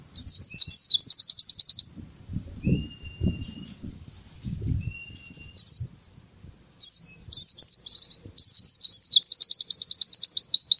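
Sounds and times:
canary twittering song: 0.0 - 10.7.

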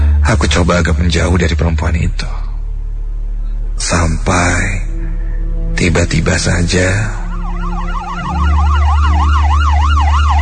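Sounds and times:
speech: 0.3 - 2.4, 3.8 - 4.8, 5.8 - 7.2
low vehicle rumble: 2.1 - 10.3
ambulance siren wailing: 4.9 - 10.3.

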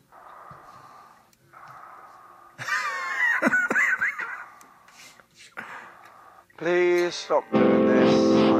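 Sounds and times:
heavy breathing down a telephone line: 0.0 - 2.7, 4.4 - 6.5
laughter: 2.6 - 4.5
speech: 6.6 - 8.5.

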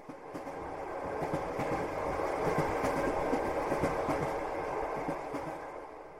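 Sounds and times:
train rushing past a station: 0.0 - 6.1.

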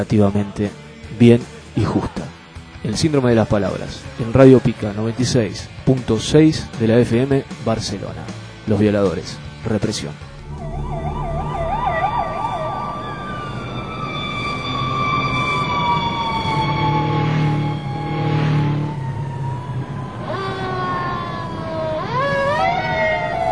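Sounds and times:
speech: 0.0 - 10.7
emergency vehicle sirens: 10.3 - 23.5.

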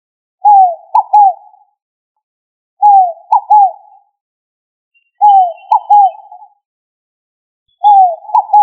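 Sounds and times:
pigeon cooing: 0.4 - 1.7, 2.8 - 4.0, 5.2 - 6.6, 7.8 - 8.6.

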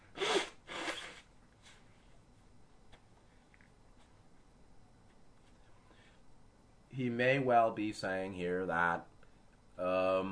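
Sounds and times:
person blowing their nose: 0.0 - 1.3
speech: 7.0 - 9.1, 9.8 - 10.2.

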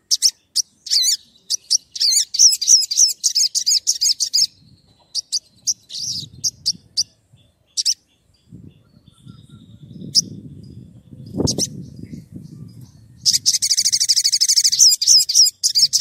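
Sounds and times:
Oriental magpie-robin singing: 0.0 - 15.9.

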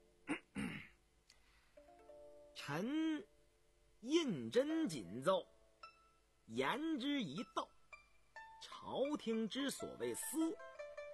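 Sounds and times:
man clearing throat before reading a document aloud: 0.3 - 1.0
speech: 2.6 - 3.3, 4.0 - 5.5, 6.5 - 7.7, 8.8 - 11.1.

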